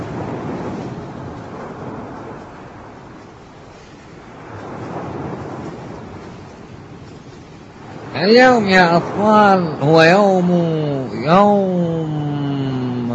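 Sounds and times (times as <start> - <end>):
thunder: 0.0 - 3.1, 4.2 - 8.2
strong storm wind roaring: 0.0 - 13.1
speech: 8.2 - 12.4.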